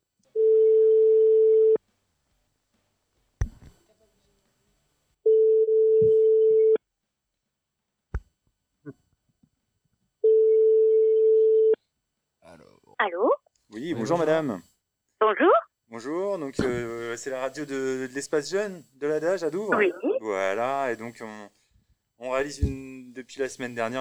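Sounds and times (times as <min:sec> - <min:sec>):
telephone line ringing tone while calling a bookshop: 0:00.4 - 0:01.8, 0:05.3 - 0:06.8, 0:10.2 - 0:11.8
speech: 0:13.0 - 0:21.6, 0:22.2 - 0:24.0.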